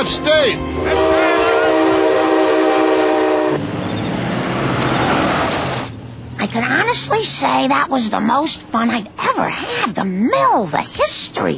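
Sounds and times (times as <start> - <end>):
speech: 0.0 - 1.3, 6.5 - 11.5
loud sustained train horn: 0.0 - 3.7
train rumbling and clattering along the rails: 0.0 - 11.5.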